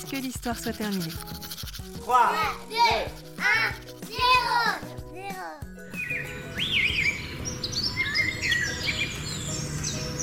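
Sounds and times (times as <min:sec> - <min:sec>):
speech: 0:00.1 - 0:05.6
blackbird, robin and nightingale singing: 0:05.8 - 0:10.2.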